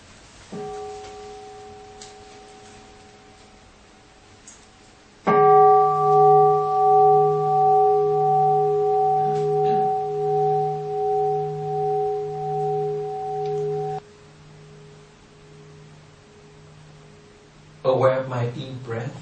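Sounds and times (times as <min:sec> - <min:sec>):
mindfulness bell struck and ringing: 0:00.5 - 0:03.5, 0:05.3 - 0:14.0.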